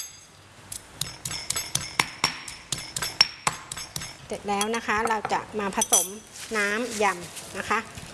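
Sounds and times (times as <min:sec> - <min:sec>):
garlic pounded with a pestle in a mortar: 0:01.0 - 0:04.3
speech: 0:04.3 - 0:08.0.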